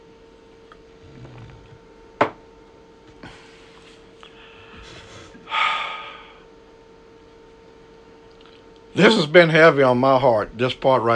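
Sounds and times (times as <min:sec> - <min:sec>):
low steady hum: 0:00.0 - 0:11.1
sharp knock of a glass: 0:02.2 - 0:02.4
speech: 0:09.0 - 0:11.1.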